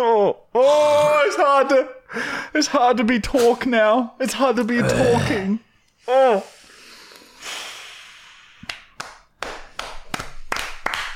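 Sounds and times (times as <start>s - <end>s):
speech: 0.0s - 6.6s
breathy hiss: 6.4s - 8.6s
sharp hand claps: 8.6s - 11.1s.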